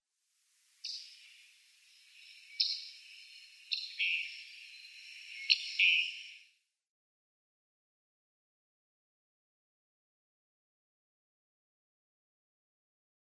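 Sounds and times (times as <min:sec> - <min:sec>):
Summer Tanager calls: 0:00.8 - 0:06.5.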